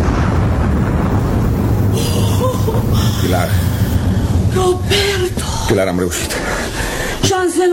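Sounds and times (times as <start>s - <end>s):
bridge being blown up: 0.0s - 7.3s
speech: 4.6s - 7.7s.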